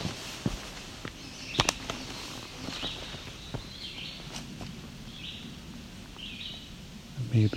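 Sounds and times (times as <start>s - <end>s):
rustling: 0.0s - 5.0s
crunch of footsteps: 0.0s - 5.4s
chestnut-sided warbler singing faintly: 1.0s - 7.5s.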